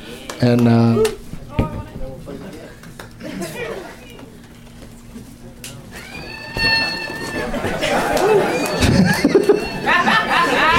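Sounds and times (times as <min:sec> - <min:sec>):
crowd chatter: 0:00.0 - 0:10.7
speech: 0:00.4 - 0:01.2
noisy laughing crowd: 0:03.2 - 0:04.2, 0:06.1 - 0:10.7.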